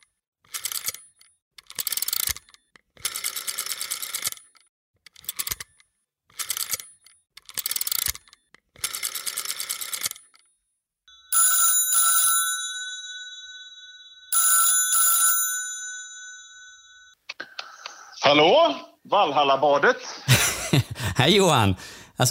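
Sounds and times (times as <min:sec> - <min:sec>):
telephone ringing tone of outgoing call: 0:11.1 - 0:17.2
speech: 0:18.3 - 0:22.3
laughter: 0:20.0 - 0:21.7.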